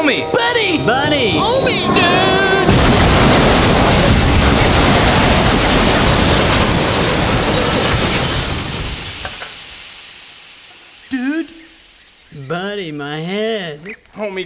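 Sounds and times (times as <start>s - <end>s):
roaring train crash sound effect: 0.0s - 11.0s
speech: 0.1s - 2.5s, 12.5s - 14.4s
clattering debris: 2.4s - 11.1s.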